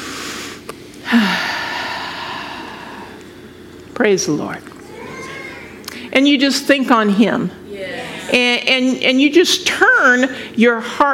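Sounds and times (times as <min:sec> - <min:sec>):
deep breath taken during a prayer: 0:00.0 - 0:03.2
speech: 0:04.0 - 0:04.7, 0:06.1 - 0:07.6, 0:08.3 - 0:11.1.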